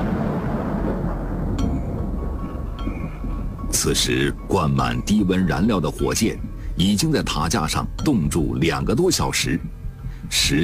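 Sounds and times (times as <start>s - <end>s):
rolling thunder in a thunderstorm at a rocket launch site: 0.0s - 4.5s
speech: 3.8s - 9.7s, 10.3s - 10.6s.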